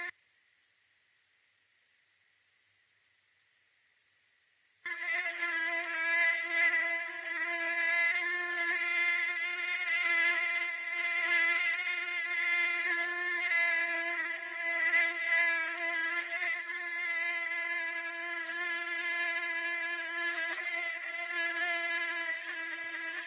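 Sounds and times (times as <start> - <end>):
mosquito wing whine: 4.9 - 23.2.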